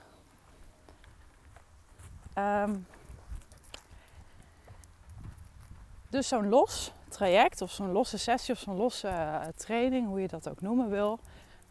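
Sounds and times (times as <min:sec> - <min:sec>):
horse hooves clip-clopping on the ground outdoors: 0:00.0 - 0:11.6
speech: 0:02.4 - 0:03.0, 0:06.1 - 0:11.5.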